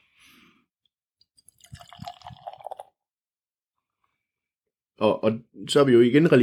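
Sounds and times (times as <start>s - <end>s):
beer glugging and splashing into a glass: 1.4s - 3.0s
speech: 5.0s - 6.4s.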